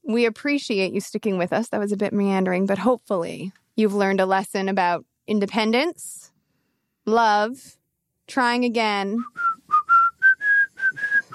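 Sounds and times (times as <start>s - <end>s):
speech: 0.1s - 6.3s, 7.1s - 9.5s
person whistling a short bright melody: 9.2s - 11.3s.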